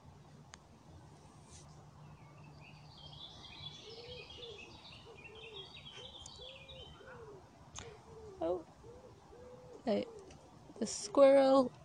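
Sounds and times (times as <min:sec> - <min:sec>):
small birds chirping: 0:00.8 - 0:11.8
wood pigeon cooing: 0:03.8 - 0:11.2
speech: 0:09.9 - 0:10.1, 0:10.8 - 0:11.8.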